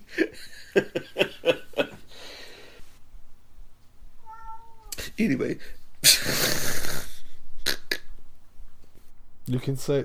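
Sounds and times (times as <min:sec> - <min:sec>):
laughter: 0:00.1 - 0:02.1, 0:06.0 - 0:08.0
cat meowing: 0:04.2 - 0:05.0
speech: 0:05.2 - 0:06.4, 0:09.5 - 0:10.0.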